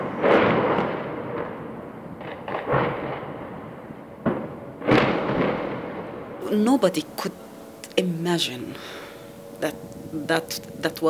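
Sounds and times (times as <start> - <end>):
missile strike explosions on a tower building in Gaza City: 0.0 - 6.4
speech: 6.5 - 7.4, 8.0 - 9.0, 9.6 - 11.0.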